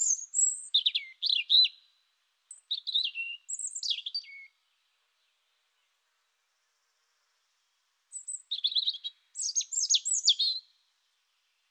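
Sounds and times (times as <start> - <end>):
European robin singing: 0.0 - 4.6, 8.1 - 10.8.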